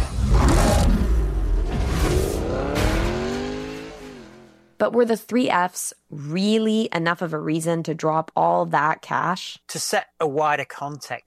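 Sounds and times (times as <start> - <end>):
gritty road noise: 0.0 - 4.7
racing video game car engine revving: 0.0 - 4.8
speech: 4.8 - 11.2.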